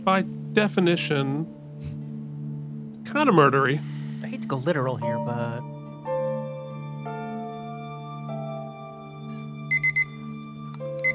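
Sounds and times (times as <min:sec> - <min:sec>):
speech: 0:00.0 - 0:01.9, 0:03.1 - 0:05.7
pager beeping: 0:09.7 - 0:11.1.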